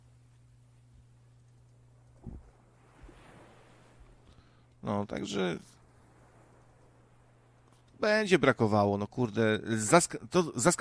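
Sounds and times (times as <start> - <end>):
low constant hum: 0.0 - 10.7
ocean waves rolling in: 0.0 - 10.7
thump: 2.2 - 3.2
speech: 4.8 - 5.8, 8.0 - 10.7.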